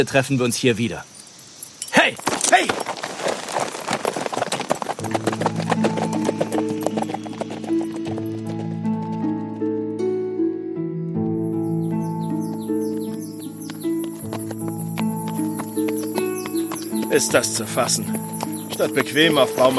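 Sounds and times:
speech: 0.0s - 1.1s, 17.2s - 19.7s
hoofbeats of a ridden horse: 1.9s - 10.6s, 11.2s - 19.7s
sustained musical tones: 5.1s - 19.7s.

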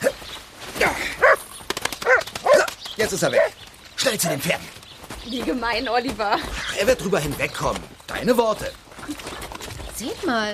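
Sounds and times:
dog barking: 1.2s - 1.4s, 2.0s - 2.7s
speech: 3.0s - 9.3s, 10.0s - 10.5s.

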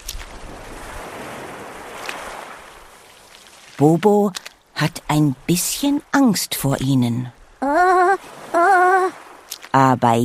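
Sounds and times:
ocean waves washing onto a beach: 0.0s - 10.2s
speech: 3.8s - 8.3s, 9.8s - 10.2s.

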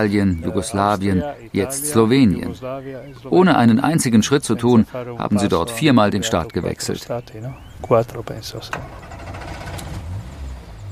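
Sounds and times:
speech: 0.0s - 9.0s
old Land Rover engine rumble on a narrow winding asphalt road: 7.6s - 10.9s.

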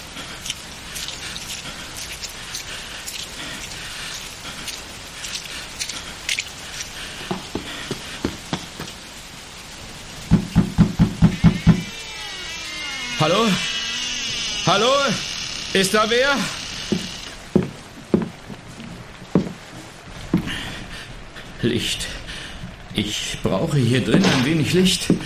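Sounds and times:
rain pattering in foul weather: 0.0s - 25.2s
knocking on the wooden door of a house: 10.3s - 11.9s
speech: 13.2s - 13.7s, 14.7s - 16.6s, 21.6s - 22.1s, 23.0s - 25.2s.

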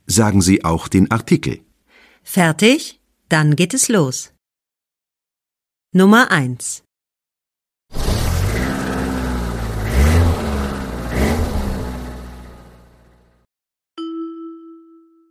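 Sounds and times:
speech: 0.1s - 4.4s, 5.9s - 6.8s
car engine revving while driving: 7.9s - 13.4s.

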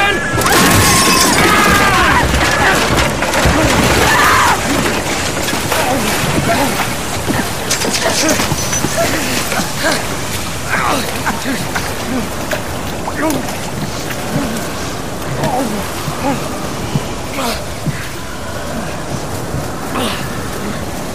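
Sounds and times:
people shouting cries: 0.0s - 20.9s
churning whipped-up water: 0.0s - 21.1s
wooden boat smashing against jagged rocks: 0.3s - 16.4s
wood splintering and cracking: 0.3s - 16.5s.

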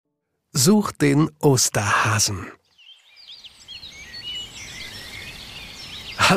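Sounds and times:
speech: 0.6s - 2.6s
several birds chirping and twittering: 0.6s - 6.3s
leaves rustling in a light spring wind: 3.0s - 6.3s.

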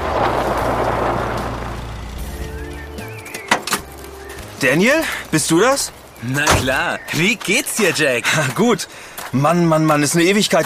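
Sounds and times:
car engine rumbling and slowing to a stop: 0.0s - 7.6s
speech: 4.6s - 10.6s.

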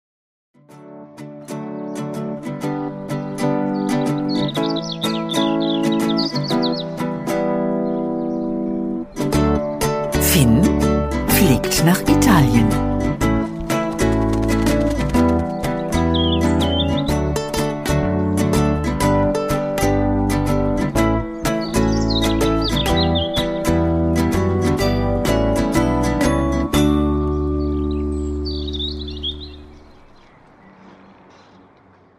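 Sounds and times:
loud instrumental music bed: 0.6s - 29.9s
robin chirping and trilling: 3.2s - 10.8s, 15.5s - 18.5s, 21.1s - 24.2s, 26.8s - 31.7s
speech: 11.7s - 12.8s.

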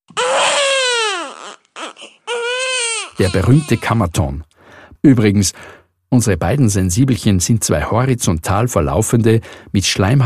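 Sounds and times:
newborn baby's first cry: 0.1s - 4.2s
speech: 3.2s - 10.2s.

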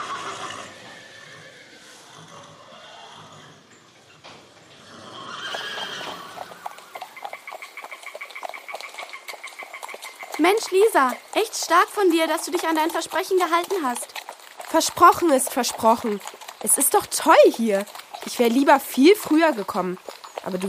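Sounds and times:
horse whinnying and nickering: 0.0s - 20.6s
speech: 10.4s - 14.1s, 14.7s - 20.6s.

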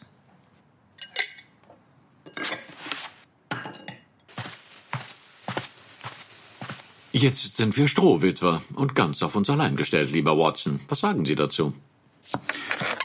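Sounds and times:
plates, glasses and cutlery clinking as dishes are cleared: 1.0s - 4.1s
soft footsteps: 2.7s - 3.3s, 4.3s - 8.0s
speech: 7.2s - 12.4s.

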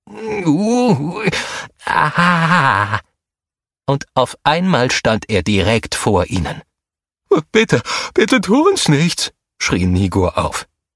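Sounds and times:
human voice performing a troll's moan in a cave: 0.0s - 3.0s
speech: 0.1s - 3.1s, 3.9s - 6.7s, 7.3s - 10.7s.

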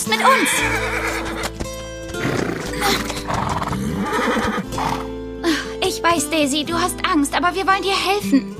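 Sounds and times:
speech: 0.0s - 1.3s, 6.0s - 8.5s
horse neighing and whinnying: 0.1s - 1.6s, 2.2s - 5.1s
hoof clatter: 0.6s - 4.6s.

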